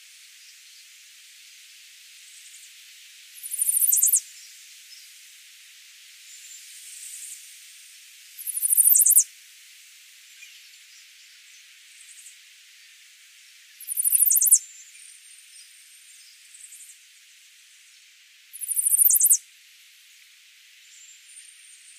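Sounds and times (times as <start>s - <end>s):
quiet hiss: 0.0s - 21.9s
Chestnut-sided warbler Setophaga pensylvanica singing high rapid phrases of sharp notes: 3.4s - 4.2s, 8.4s - 9.2s, 13.8s - 14.6s, 18.6s - 19.4s.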